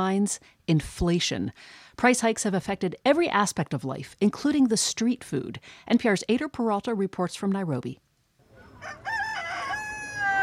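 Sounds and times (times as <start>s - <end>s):
speech: 0.0s - 8.0s, 8.8s - 9.2s
rooster crowing at a chicken shop in Nairobi Kenya: 8.5s - 10.4s.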